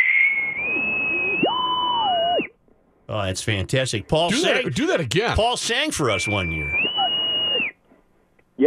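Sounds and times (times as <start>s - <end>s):
bosun's whistle blown with a shrill tone and warbling note: 0.0s - 2.6s, 6.0s - 7.8s
speech: 3.1s - 6.8s.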